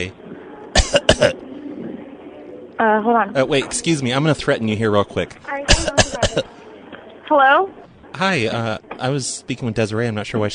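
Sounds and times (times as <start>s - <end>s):
speech: 0.0s - 0.2s, 2.8s - 6.6s, 7.3s - 10.5s
person coughing: 0.8s - 1.4s, 5.7s - 6.5s.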